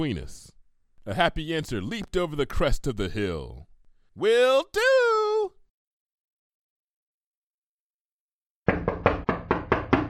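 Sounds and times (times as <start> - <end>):
speech: 0.0 - 4.9
loud hollow knocks on a front door: 8.7 - 10.0.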